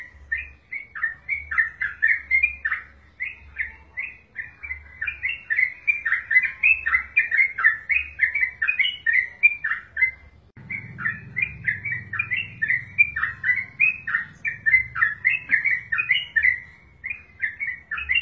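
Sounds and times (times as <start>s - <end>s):
wild Yellow-vented bulbul chirping calls: 0.0s - 18.1s
low rumble: 10.6s - 15.3s.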